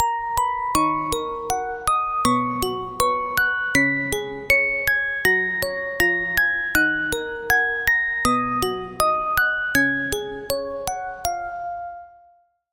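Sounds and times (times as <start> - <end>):
music box bell melody: 0.0 - 12.4.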